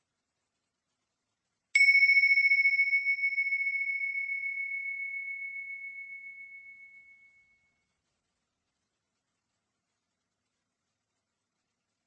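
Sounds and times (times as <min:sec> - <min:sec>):
single bright bell ringing: 0:01.8 - 0:07.6.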